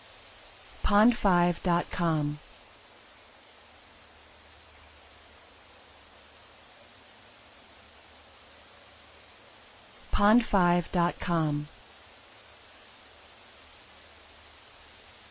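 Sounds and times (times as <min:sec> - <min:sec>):
cricket calling with a high shrill trill: 0:00.0 - 0:00.8, 0:02.4 - 0:10.1, 0:11.7 - 0:15.2
speech: 0:00.9 - 0:02.4, 0:10.2 - 0:11.7.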